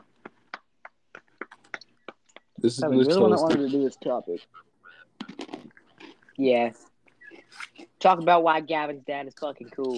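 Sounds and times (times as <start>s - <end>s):
speech: 2.6s - 4.7s, 6.4s - 6.9s, 8.0s - 9.9s
person crunching on pork rinds: 5.2s - 6.4s.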